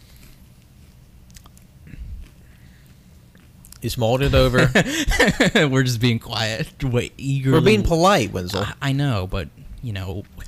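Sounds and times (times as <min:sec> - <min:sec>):
biting into a sandwich: 0:00.0 - 0:03.8
soft moist chewing of a sandwich: 0:00.0 - 0:03.8
speech: 0:03.8 - 0:10.4
laughter: 0:04.2 - 0:05.8, 0:07.6 - 0:07.9.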